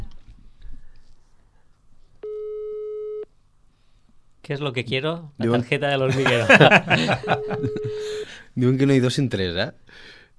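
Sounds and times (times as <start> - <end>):
faint low noise: 0.0 - 10.3
telephone call tone beep while redialing: 2.2 - 3.2, 7.2 - 8.0
speech: 4.5 - 10.2
laughter: 6.1 - 8.1.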